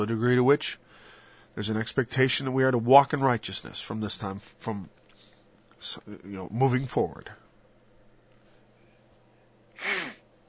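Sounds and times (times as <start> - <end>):
speech: 0.0 - 5.0, 5.8 - 7.4
strained breathy gasp for air with a faint voiced rasp: 9.8 - 10.2.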